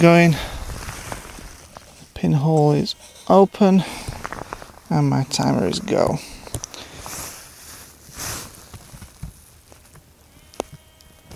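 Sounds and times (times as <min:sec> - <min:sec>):
speech: 0:00.0 - 0:00.5, 0:02.2 - 0:04.2, 0:04.9 - 0:06.4
soft rustling of moving flock: 0:00.0 - 0:02.2, 0:02.9 - 0:10.1
sheep flock bleating: 0:02.6 - 0:04.3, 0:04.9 - 0:06.3, 0:10.3 - 0:11.3.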